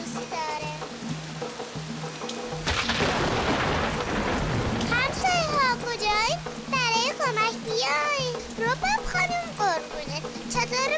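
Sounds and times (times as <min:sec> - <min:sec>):
heavy rain: 0:00.0 - 0:10.9
low rumble of thunder: 0:02.6 - 0:07.1.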